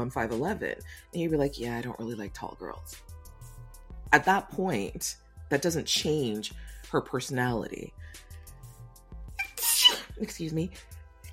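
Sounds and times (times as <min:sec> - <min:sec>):
speech: 0:00.0 - 0:03.1, 0:04.1 - 0:08.2, 0:10.2 - 0:11.0
human sneeze: 0:09.4 - 0:10.1.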